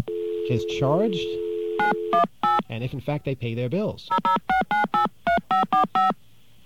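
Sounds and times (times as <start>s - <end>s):
speech: 0.5s - 6.2s
touch-tone telephone dialing a number: 1.8s - 2.7s, 4.1s - 6.2s.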